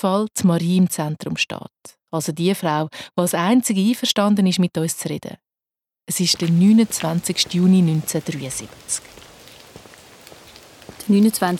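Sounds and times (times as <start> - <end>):
speech: 0.0 - 5.5, 6.1 - 9.2, 11.1 - 11.5
soft rain pattering on a surface in Switzerland during a passing cold front: 6.1 - 11.5.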